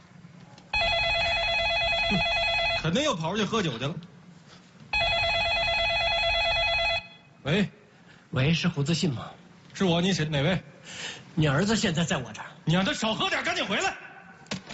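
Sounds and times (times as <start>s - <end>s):
telephone ringing with an electronic warble: 0.8s - 3.0s, 5.0s - 7.3s
speech: 2.1s - 4.1s, 7.4s - 14.1s.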